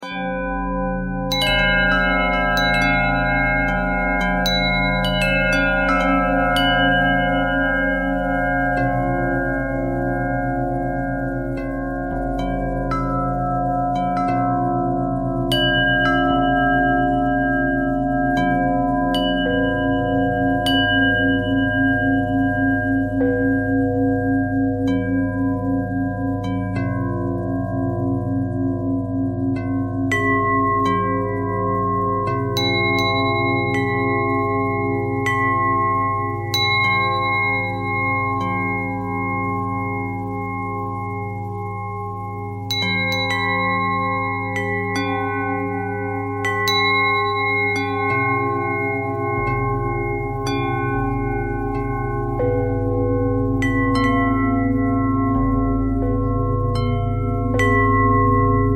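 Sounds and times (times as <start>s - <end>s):
bells ringing: 0.0s - 58.7s.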